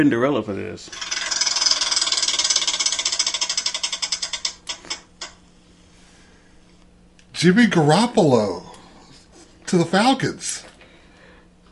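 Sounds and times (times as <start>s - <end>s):
speech: 0.0s - 1.2s, 7.4s - 8.7s, 9.7s - 10.7s
spinning prize wheel ratcheting clicks: 0.9s - 5.4s.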